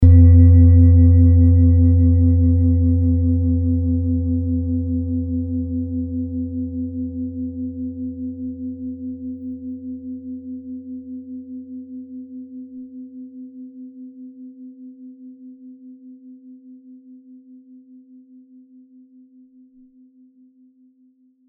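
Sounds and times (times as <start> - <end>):
cymbal: 0.0 - 8.0.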